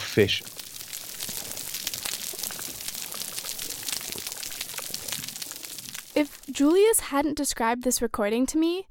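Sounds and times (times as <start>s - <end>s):
speech: 0.2s - 0.6s, 6.2s - 8.8s
snapping crustaceans crackling on an underwater coral reef: 0.4s - 6.9s.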